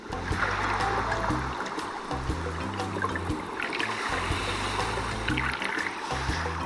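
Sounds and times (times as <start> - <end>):
sea water lapping: 0.0 - 6.6.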